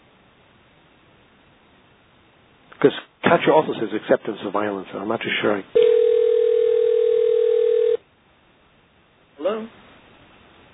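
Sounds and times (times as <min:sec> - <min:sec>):
speech: 0:02.8 - 0:05.9
quiet phone line hiss: 0:05.8 - 0:08.0
telephone ring tone over a phone line: 0:05.8 - 0:08.0.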